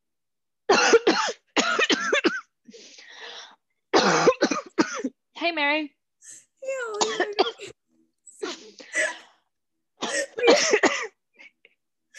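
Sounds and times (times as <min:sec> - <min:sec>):
person coughing and choking as if something is stuck in the throat: 0:00.7 - 0:02.6, 0:03.9 - 0:05.2, 0:06.9 - 0:07.8, 0:10.0 - 0:11.2
speech: 0:05.6 - 0:06.0.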